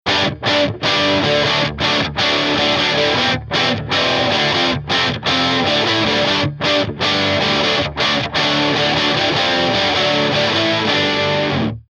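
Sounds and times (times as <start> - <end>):
dirty Gibson Les Paul Special electric guitar: 0.0 - 11.8.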